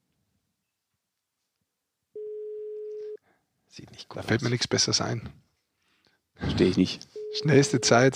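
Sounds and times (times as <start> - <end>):
faint noise: 0.0 - 8.1
telephone line tone while placing a call: 2.2 - 3.2, 7.2 - 8.1
speech: 3.7 - 5.4, 6.6 - 8.1.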